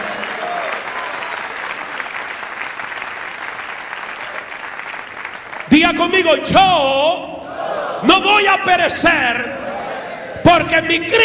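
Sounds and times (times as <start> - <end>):
church audience applauding: 0.0 - 6.2
speech: 5.8 - 7.2, 8.0 - 9.5, 10.5 - 11.2.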